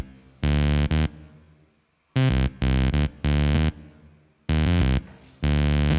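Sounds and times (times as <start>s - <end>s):
distorted synth bass played through an amp: 0.0s - 1.3s, 2.2s - 3.9s, 4.5s - 5.9s.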